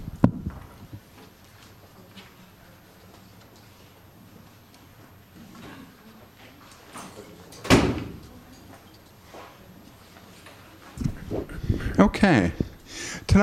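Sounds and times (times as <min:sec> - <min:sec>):
shuffling and handling noises: 0:00.5 - 0:07.6, 0:08.2 - 0:12.0
door swinging shut: 0:07.6 - 0:08.2
speech: 0:12.2 - 0:12.7.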